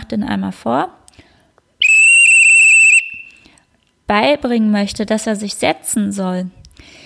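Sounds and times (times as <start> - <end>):
speech: 0.1 - 1.0, 4.1 - 7.0
trill blown on a dog-training whistle: 1.8 - 3.4.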